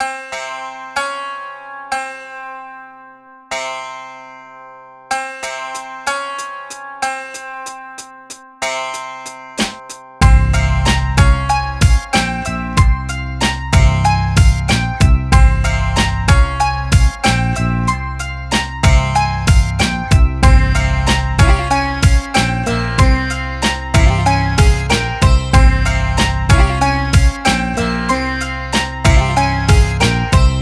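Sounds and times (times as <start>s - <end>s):
exotica hip hop music loop in C minor: 6.4s - 30.6s.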